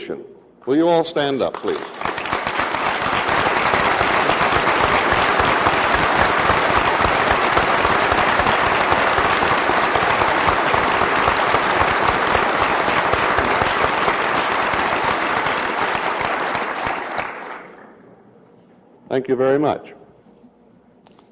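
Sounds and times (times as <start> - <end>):
speech: 0.1 - 2.1, 19.2 - 20.0
large crowd applauding at a graduation ceremony: 1.4 - 18.0.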